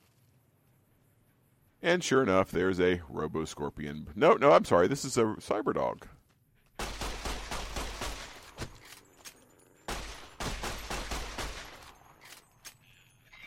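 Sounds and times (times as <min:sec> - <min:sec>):
speech: 0:01.8 - 0:06.2
rapid automatic gunfire from a fast-firing gun in a video game: 0:06.8 - 0:08.6, 0:09.9 - 0:11.9.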